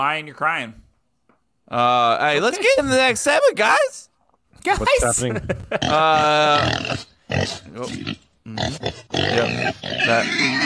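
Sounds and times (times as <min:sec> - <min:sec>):
speech: 0:00.0 - 0:00.8, 0:01.7 - 0:10.6
pig squealing and grunting sound effect: 0:05.7 - 0:10.6.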